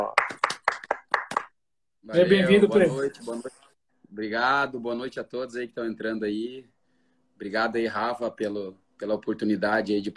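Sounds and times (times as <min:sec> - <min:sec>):
single person clapping hands to welcome a guest: 0:00.0 - 0:01.6
speech: 0:02.1 - 0:06.8, 0:07.4 - 0:10.1.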